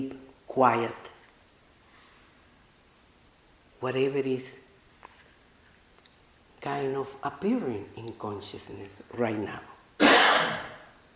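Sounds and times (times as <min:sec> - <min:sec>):
speech: 0:00.0 - 0:01.0, 0:03.8 - 0:04.6, 0:06.6 - 0:10.6
single short cough: 0:10.0 - 0:10.8.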